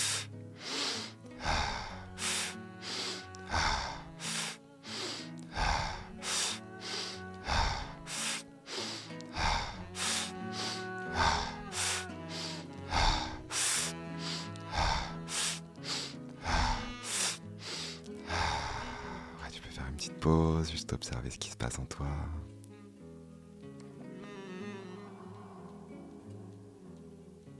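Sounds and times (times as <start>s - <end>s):
deep breathing in through the nose and out through the mouth: 0.0s - 19.6s
speech: 20.3s - 22.6s.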